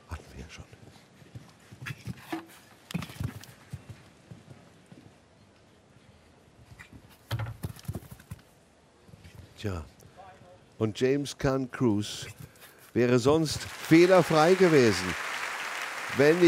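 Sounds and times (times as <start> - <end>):
white horse hoofbeats on soft show-jumping arena ground: 0.5 - 8.5
speech: 9.6 - 10.0, 10.8 - 12.4, 13.0 - 15.2, 16.2 - 16.4.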